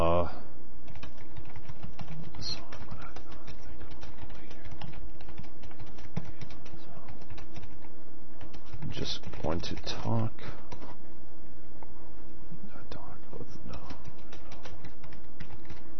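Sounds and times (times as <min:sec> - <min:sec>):
low hum: 0:00.0 - 0:15.9
rapid typing on a computer keyboard: 0:00.8 - 0:11.0, 0:13.7 - 0:15.9.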